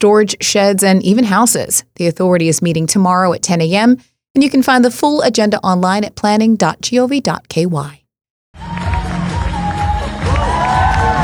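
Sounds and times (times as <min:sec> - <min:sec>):
speech: 0:00.0 - 0:08.0
large crowd applauding at a competition in London: 0:08.6 - 0:11.2.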